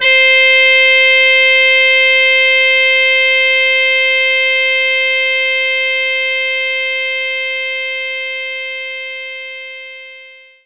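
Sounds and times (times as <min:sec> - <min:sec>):
mute trumpet playing C5: 0:00.0 - 0:08.4.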